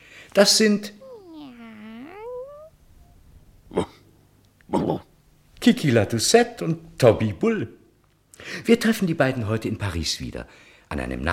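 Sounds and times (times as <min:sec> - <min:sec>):
speech: 0:00.4 - 0:01.0, 0:05.6 - 0:07.8, 0:08.4 - 0:11.3
cat meowing: 0:01.0 - 0:02.7.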